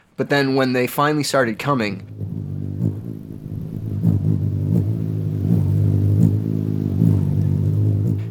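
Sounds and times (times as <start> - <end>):
speech: 0.2 - 2.2
hummingbird wings buzzing: 2.0 - 8.2.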